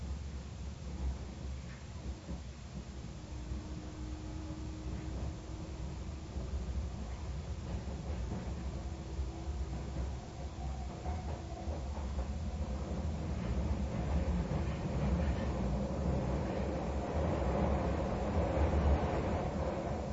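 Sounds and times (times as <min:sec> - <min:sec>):
faint drawn-out whine of train rounding a curve: 0:00.0 - 0:20.1
train rounding a curve heard from inside the car: 0:00.0 - 0:20.1.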